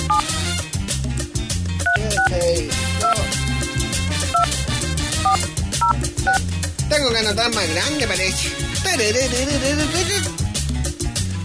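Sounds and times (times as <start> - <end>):
loud steady rhythmic backing with heavy low thumps: 0.0 - 11.4
telephone keypad dialing tones: 5.3 - 6.4
speech: 7.0 - 10.4.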